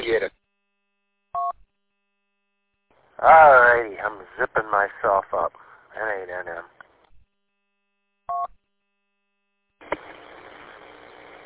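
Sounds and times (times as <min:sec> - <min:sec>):
telephone being dialed touch-tone beep: 0:01.4 - 0:01.6, 0:08.3 - 0:08.5
speech: 0:03.2 - 0:06.7.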